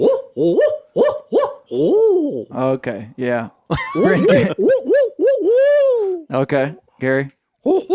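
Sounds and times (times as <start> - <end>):
speech: 0.0 - 1.2, 2.6 - 5.0, 6.3 - 7.9
person imitating owl hooting calls: 0.0 - 2.6, 4.1 - 6.3, 7.6 - 7.9
laughter: 3.7 - 4.7.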